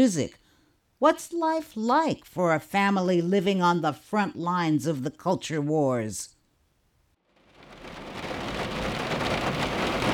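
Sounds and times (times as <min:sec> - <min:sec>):
speech: 0:00.0 - 0:00.4, 0:01.0 - 0:06.4
steady rain on a November day in Raleigh North Carolina: 0:07.2 - 0:10.1.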